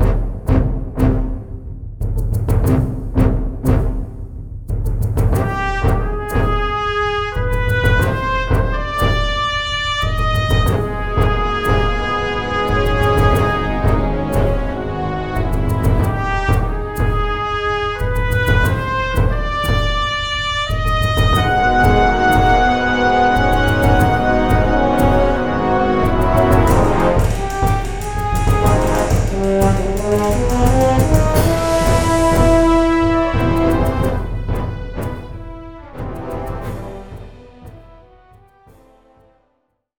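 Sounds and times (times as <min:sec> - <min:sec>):
orchestral battle music loop: 0:00.0 - 0:04.4, 0:05.1 - 0:39.2.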